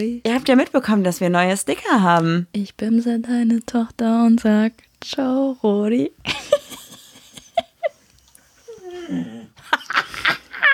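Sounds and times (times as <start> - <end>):
speech: 0.0 - 6.5, 9.1 - 10.0
dog whining moan: 8.6 - 9.6.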